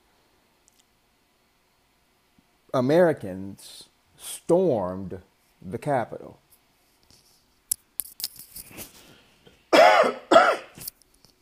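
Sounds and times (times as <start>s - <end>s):
speech: 2.7s - 6.4s
person coughing from allergies: 9.7s - 10.8s.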